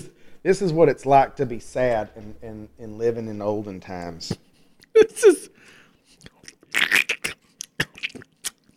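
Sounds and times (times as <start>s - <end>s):
speech: 0.4s - 5.8s
soft mouth sounds: 4.2s - 5.6s, 6.2s - 8.7s
crunchy chewing on a vanilla stick: 6.2s - 8.7s.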